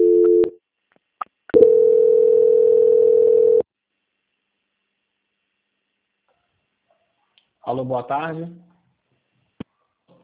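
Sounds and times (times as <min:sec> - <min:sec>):
telephone line tones during a call transfer: 0:00.0 - 0:00.5, 0:01.6 - 0:03.6
speech: 0:07.8 - 0:08.7.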